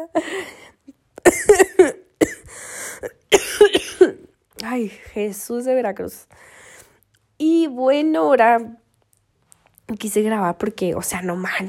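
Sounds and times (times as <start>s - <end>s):
speech: 0.0s - 0.6s, 5.2s - 6.5s, 7.4s - 8.8s, 9.9s - 11.6s
harsh raspy wheezy coughing: 1.2s - 4.3s.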